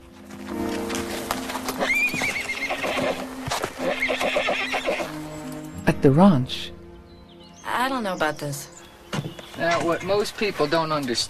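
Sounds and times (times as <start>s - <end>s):
hooves clip-clopping: 0.0s - 5.8s, 9.1s - 11.2s
foal whinnying while led on a rope: 1.8s - 5.1s
speech: 6.0s - 6.8s, 8.0s - 8.7s, 9.6s - 11.2s.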